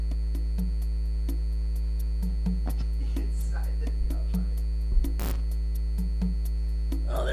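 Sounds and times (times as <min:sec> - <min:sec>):
electrical hum inside a neon light outside a convenience store: 0:00.0 - 0:07.3
sharp electrical crackle: 0:05.1 - 0:05.5.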